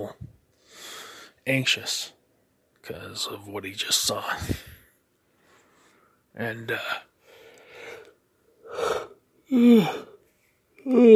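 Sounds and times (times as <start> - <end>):
speech: 1.5 - 2.2, 2.8 - 4.7, 6.4 - 7.1, 8.8 - 10.1, 10.8 - 11.1
person yawning after just waking up: 8.7 - 10.2.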